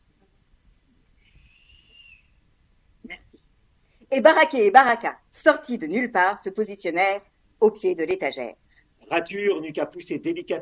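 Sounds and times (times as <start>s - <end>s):
soft thin whistle: 1.2s - 2.4s
speech: 4.1s - 10.6s.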